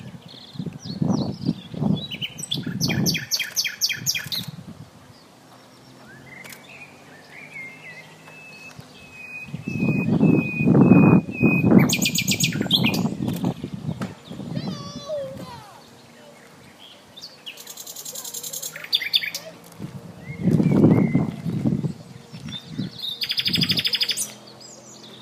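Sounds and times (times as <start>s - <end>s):
heavy low rumbling bursts of wind or handling noise: 0.0s - 18.0s, 18.7s - 25.1s
common nightingale Luscinia megarhynchos song: 0.0s - 19.6s, 20.2s - 25.1s.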